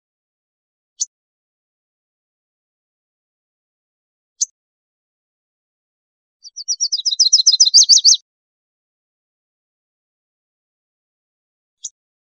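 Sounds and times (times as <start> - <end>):
Louisiana waterthrush singing: 6.7 - 8.2.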